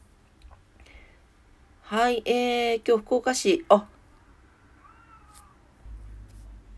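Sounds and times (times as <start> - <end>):
speech: 1.9 - 3.9
cat meowing: 4.7 - 5.7.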